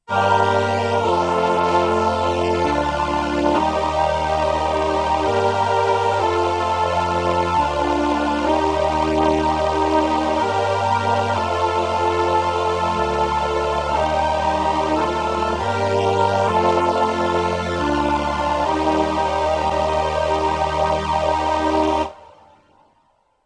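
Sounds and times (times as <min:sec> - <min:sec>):
strings: 0:00.1 - 0:22.8.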